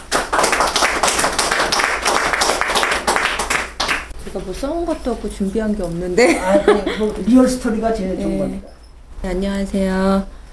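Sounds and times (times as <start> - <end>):
lecture audience applauding to welcome a speaker: 0.0 - 4.1
speech: 4.4 - 10.4
laughter: 6.2 - 7.4.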